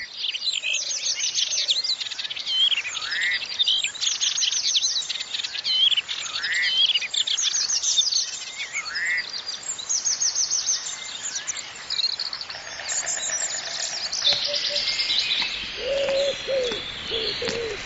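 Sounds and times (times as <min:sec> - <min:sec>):
dense chorus of birdsong in a spring forest: 0:00.0 - 0:17.8
low cooing bird calls: 0:12.4 - 0:17.8.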